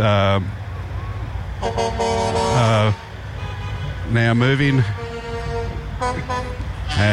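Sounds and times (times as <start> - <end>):
speech: 0.0 - 0.6, 1.6 - 3.1, 4.1 - 5.0, 6.0 - 7.1
low engine rumble: 0.0 - 7.1
truck horns honking during a street parade: 0.5 - 7.1.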